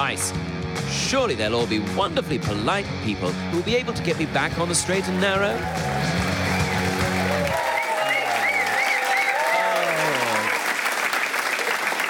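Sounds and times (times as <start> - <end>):
speech: 0.1 - 6.2
audience applause: 4.6 - 12.0
voices whooping: 4.8 - 10.6.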